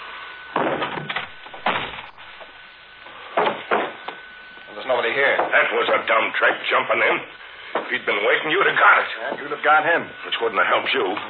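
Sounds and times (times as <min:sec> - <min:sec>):
unlocked wooden door being kicked open: 0:00.6 - 0:02.2, 0:03.3 - 0:04.0
speech: 0:05.2 - 0:11.2.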